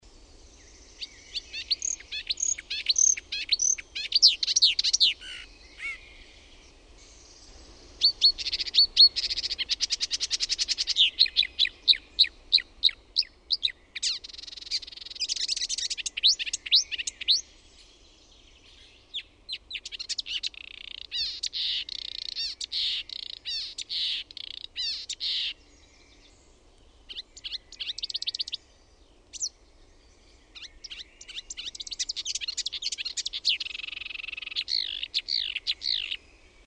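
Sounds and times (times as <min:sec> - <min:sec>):
spotted crake calling: 0:01.4 - 0:06.0, 0:08.0 - 0:17.4, 0:19.5 - 0:25.6, 0:27.1 - 0:28.6, 0:30.6 - 0:36.2.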